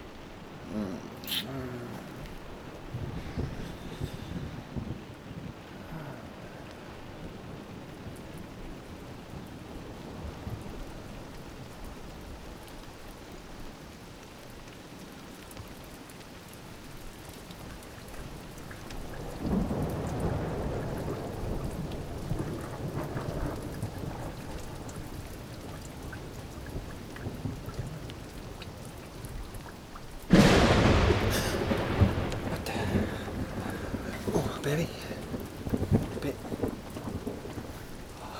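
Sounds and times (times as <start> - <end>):
steady rain: 0.0 - 38.3
deep rumbling thunder: 1.9 - 9.0, 19.0 - 29.5, 30.3 - 38.3.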